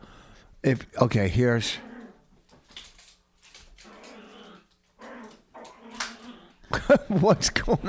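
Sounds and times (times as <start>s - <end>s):
speech: 0.6s - 1.9s, 7.0s - 7.8s
dog growling playfully: 1.7s - 2.2s, 3.8s - 6.8s.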